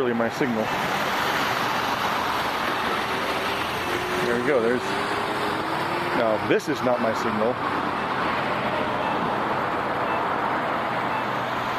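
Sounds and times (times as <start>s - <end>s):
speech: 0.0s - 1.0s, 4.2s - 5.2s, 6.2s - 7.9s
road traffic passing along a cross street at a signal-controlled crossing: 0.0s - 11.7s.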